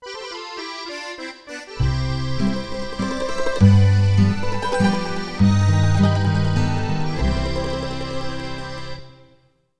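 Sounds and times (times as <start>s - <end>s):
musical stinger: 1.8s - 9.3s.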